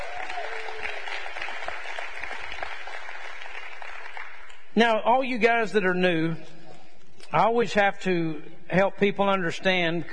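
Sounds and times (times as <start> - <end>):
audience clapping: 0.0 - 4.7
speech: 4.8 - 6.6, 7.3 - 10.1.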